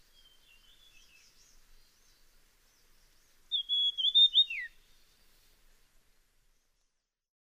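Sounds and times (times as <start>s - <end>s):
dusky fulvetta calling with a thin high whistle: 3.5s - 4.8s.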